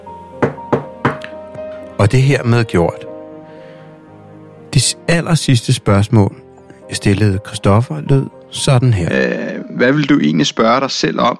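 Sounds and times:
knocking on a wooden table: 0.4 - 1.4
speech: 2.0 - 3.1, 4.8 - 11.3.

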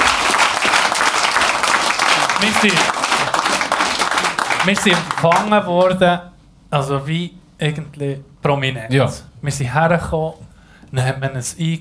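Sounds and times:
audience applause: 0.0 - 6.0
speech: 2.4 - 3.0, 4.6 - 11.7.

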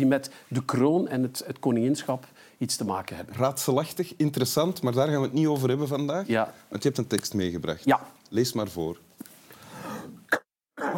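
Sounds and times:
speech: 0.0 - 9.1
person coughing: 10.3 - 10.9.

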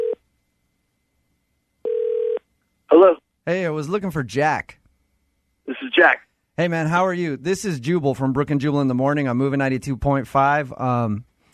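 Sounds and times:
ringback tone on an outgoing telephone call: 0.0 - 0.2, 1.8 - 2.4
speech: 3.0 - 4.8, 6.0 - 11.5.

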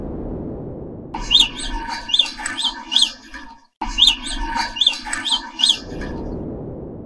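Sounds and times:
naked mole-rat chirping vocalizations: 1.2 - 6.3.

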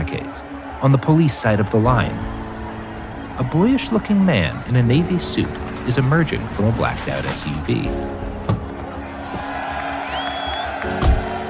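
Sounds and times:
crowd of protesters at police barricades cheering on a freezing day: 0.0 - 11.4
speech: 0.4 - 2.4, 3.4 - 8.3
rising whistle: 10.1 - 10.8.

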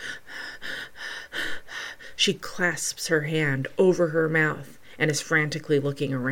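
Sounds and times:
quick heavy breathing: 0.0 - 2.2
startled gasp: 0.0 - 2.2
speech: 2.2 - 6.2.

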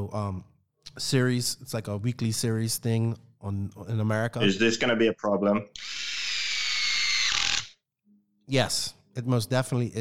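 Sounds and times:
speech: 0.0 - 6.0, 8.5 - 10.0
electric drill running: 5.8 - 7.8.

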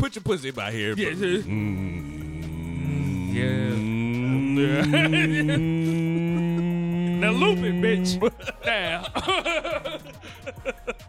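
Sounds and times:
speech: 0.0 - 2.1, 3.3 - 4.0, 4.6 - 6.2, 7.2 - 10.1
laughter: 1.0 - 11.0
person humming into the microphone: 1.1 - 9.1.

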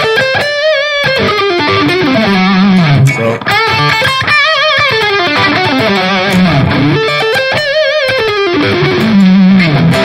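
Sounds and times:
loud distorted electric guitar with humbucker pickup and added resistor: 0.0 - 10.0
person saying a single short word: 3.0 - 3.5.

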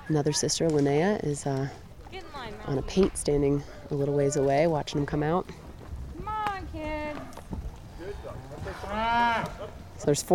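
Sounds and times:
wind: 0.0 - 10.3
speech: 0.1 - 5.6, 8.9 - 10.3
cow mooing: 8.0 - 9.8.

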